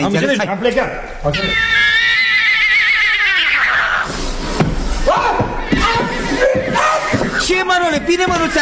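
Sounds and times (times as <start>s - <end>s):
speech: 0.0s - 2.0s, 7.9s - 8.6s
indistinct voices: 0.0s - 8.6s
sick chestnut horse neighing: 1.3s - 7.4s.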